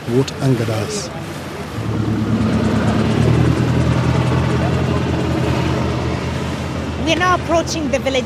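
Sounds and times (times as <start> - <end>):
speech: 0.1 - 2.3, 7.1 - 8.2
helicopter hovering overhead with rotor chop: 1.6 - 8.2.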